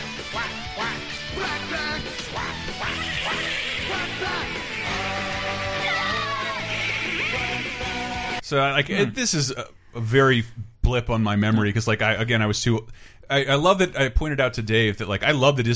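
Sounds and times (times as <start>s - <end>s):
upbeat cartoon theme song with a brassy band: 0.0s - 9.2s
duck quacks woven through the music: 0.3s - 5.7s
speech: 8.5s - 15.7s.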